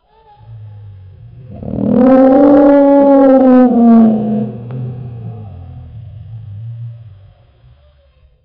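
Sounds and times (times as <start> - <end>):
Tyrannosaurus rex roaring in a jungle: 1.2 - 6.4.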